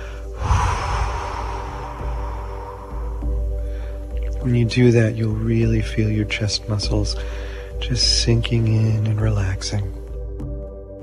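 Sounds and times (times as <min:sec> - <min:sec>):
forceful breath blown out during a chest-breathing meditation exercise: 0:00.0 - 0:04.2
speech: 0:04.4 - 0:10.0.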